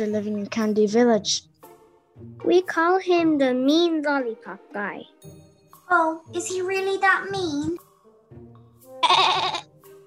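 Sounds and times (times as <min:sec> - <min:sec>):
speech: 0:00.0 - 0:01.5, 0:02.2 - 0:08.4, 0:09.0 - 0:09.7
person imitating goat bleating: 0:09.0 - 0:09.7.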